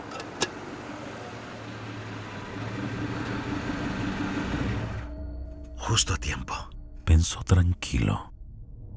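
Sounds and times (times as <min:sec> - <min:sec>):
car engine rumbling as the vehicle draws near: 0:00.0 - 0:07.0
speech: 0:05.9 - 0:08.3.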